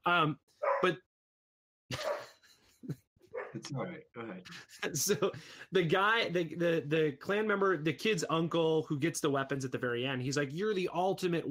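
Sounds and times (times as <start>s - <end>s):
speech: 0.0s - 1.1s, 3.6s - 11.5s
dog barking in short sharp bursts: 0.6s - 0.9s, 2.0s - 2.3s, 3.4s - 3.6s
laughter: 1.9s - 3.0s, 3.6s - 5.8s.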